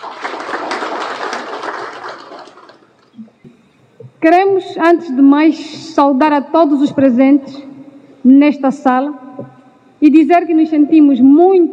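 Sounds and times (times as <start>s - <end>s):
room full of people applauding: 0.0s - 2.9s
speech: 4.2s - 11.7s.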